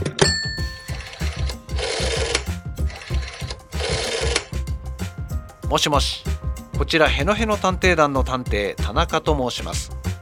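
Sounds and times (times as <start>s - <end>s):
telephone ringing: 0.2s - 4.5s
speech: 5.7s - 10.0s.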